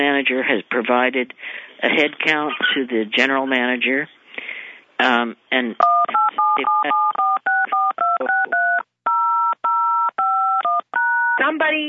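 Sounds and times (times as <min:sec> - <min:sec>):
speech: 0:00.0 - 0:04.2, 0:05.0 - 0:07.0, 0:11.4 - 0:11.8
telephone keypad dialing tones during a phone call: 0:05.8 - 0:11.4.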